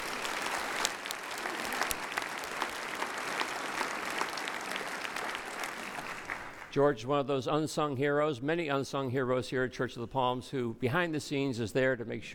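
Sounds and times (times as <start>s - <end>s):
large audience applauding in a church: 0.0s - 6.8s
speech: 6.8s - 12.3s.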